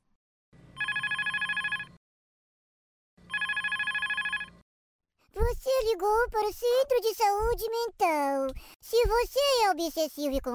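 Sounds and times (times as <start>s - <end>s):
buzzy pulsing ringback tone of an outgoing phone call: 0.8s - 2.0s, 3.3s - 4.6s
speech: 5.5s - 10.5s.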